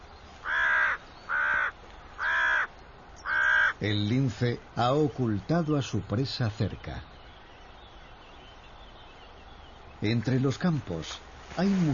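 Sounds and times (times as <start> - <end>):
crow cawing: 0.4 - 3.8
speech: 3.8 - 7.1, 10.0 - 11.9.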